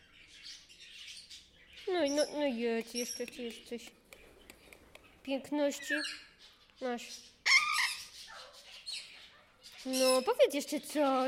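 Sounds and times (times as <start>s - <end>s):
small pet bird chirping and warbling: 0.0s - 11.2s
speech: 1.9s - 4.0s, 5.3s - 7.3s, 9.8s - 11.2s.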